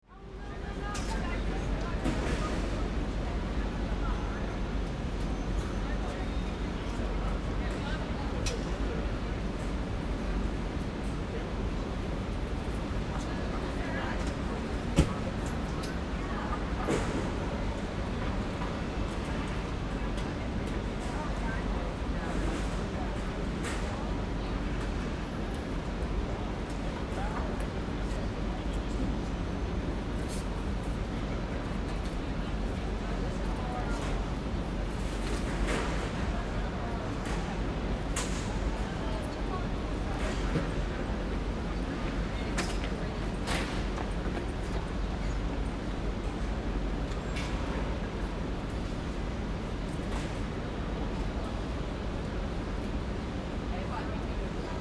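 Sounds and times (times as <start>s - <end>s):
city ambience: 0.1s - 54.7s.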